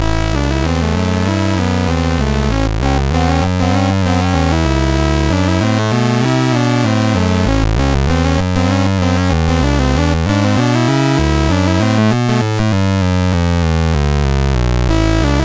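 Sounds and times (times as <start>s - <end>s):
blues music on a MOS6581R3 sound chip: 0.0s - 15.4s.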